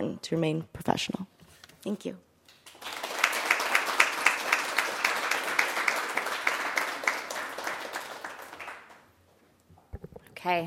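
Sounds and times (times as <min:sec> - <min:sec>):
speech: 0:00.0 - 0:02.3, 0:10.4 - 0:10.6
audience applause after a reading: 0:02.7 - 0:09.1.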